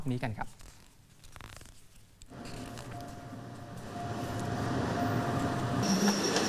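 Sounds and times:
speech: 0.1s - 0.6s
train rumbling: 2.3s - 6.4s.

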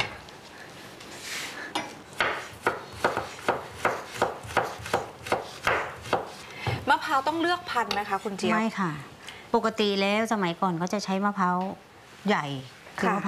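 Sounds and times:
knife chopping curry ingredients on a wooden board: 2.2s - 6.8s
speech: 7.2s - 13.2s.

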